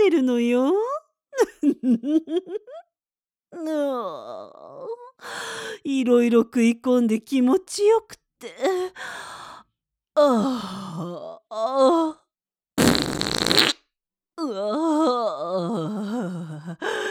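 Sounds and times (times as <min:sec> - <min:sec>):
speech: 0:00.2 - 0:00.9, 0:01.6 - 0:02.9, 0:03.5 - 0:09.6, 0:10.2 - 0:12.2, 0:14.4 - 0:17.1
fart: 0:12.8 - 0:13.8.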